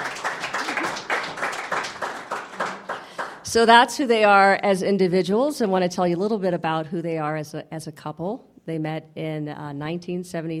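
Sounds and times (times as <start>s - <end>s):
audience applause: 0.0s - 3.5s
speech: 3.5s - 10.5s.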